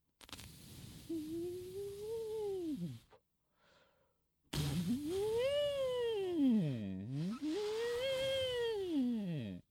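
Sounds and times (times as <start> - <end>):
small voice practising: 1.1 - 3.2, 4.6 - 9.6.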